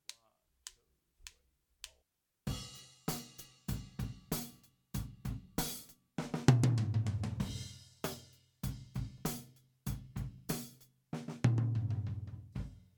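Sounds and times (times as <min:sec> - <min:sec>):
rack tom drum: 0:02.5 - 0:12.8.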